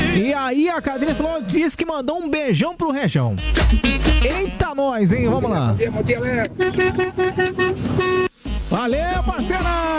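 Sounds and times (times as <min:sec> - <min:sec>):
speech: 0:00.2 - 0:09.9
horn honking: 0:03.4 - 0:04.7, 0:06.3 - 0:08.8.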